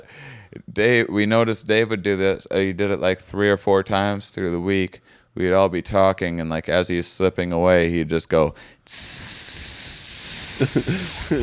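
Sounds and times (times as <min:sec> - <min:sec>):
speech: 0:00.1 - 0:09.8, 0:10.6 - 0:11.4
person hissing imitating a snake as a goodbye: 0:08.9 - 0:11.4
voiced murmurs or laughs: 0:08.9 - 0:11.4.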